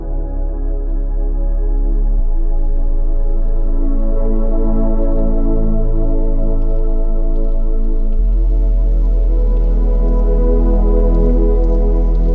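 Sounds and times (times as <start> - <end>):
calm spiritual music of long held tones over a deep bass note: 0.0 - 12.3
light patter of gentle rain: 0.1 - 12.3.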